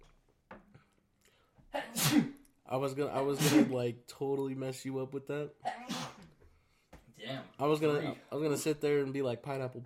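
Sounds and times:
sneeze: 1.7 - 2.4, 3.4 - 3.8, 5.7 - 6.3
speech: 2.7 - 5.7, 7.3 - 9.8.

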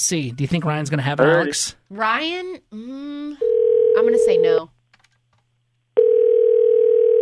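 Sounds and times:
speech: 0.0 - 4.8
steady telephone tone on a phone line: 3.4 - 4.4, 6.0 - 7.2.

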